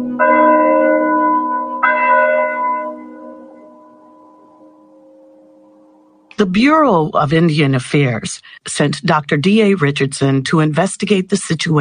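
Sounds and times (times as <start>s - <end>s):
church bell tolling: 0.0s - 6.4s
speech: 6.4s - 11.8s.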